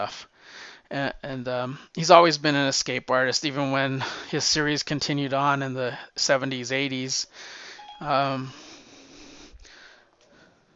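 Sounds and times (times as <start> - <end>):
speech: 0.0 - 8.7
phone voice assistant activation chime: 7.8 - 8.5.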